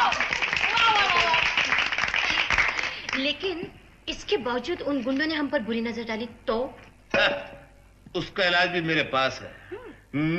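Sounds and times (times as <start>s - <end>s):
excited voices cheering: 0.0s - 1.5s
crowd applauding: 0.0s - 3.3s
speech: 3.2s - 10.3s.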